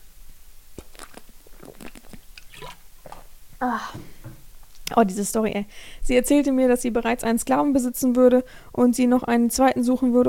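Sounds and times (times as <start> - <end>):
person sipping water: 0.7 - 4.4
speech: 3.6 - 10.2.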